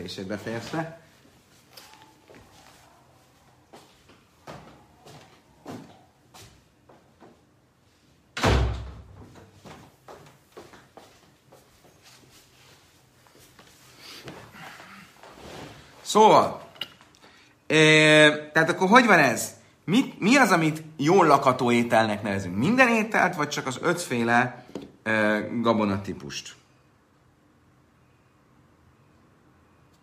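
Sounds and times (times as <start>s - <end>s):
speech: 0.0s - 1.1s, 16.1s - 16.6s, 17.7s - 26.6s
shuffling movements: 0.2s - 8.2s, 9.3s - 16.7s
door shut with loud solid thud: 8.4s - 9.3s.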